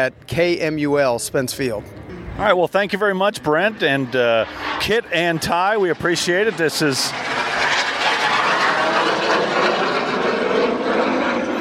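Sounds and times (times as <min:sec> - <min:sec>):
speech: 0:00.0 - 0:07.6
jet aircraft roaring past: 0:00.9 - 0:11.5.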